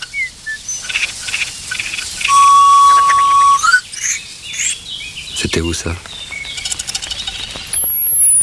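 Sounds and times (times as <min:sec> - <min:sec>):
thin steady high-pitched whistle: 0:00.0 - 0:04.8, 0:07.0 - 0:08.4
birds chirping: 0:00.0 - 0:08.4
common chaffinch singing: 0:00.0 - 0:08.4
common whitethroat calling: 0:00.0 - 0:08.4
speech: 0:05.6 - 0:06.2.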